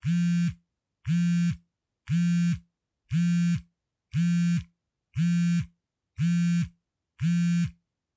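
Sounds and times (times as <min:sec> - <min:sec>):
mobile phone vibrating: 0:00.0 - 0:03.6, 0:04.2 - 0:07.8.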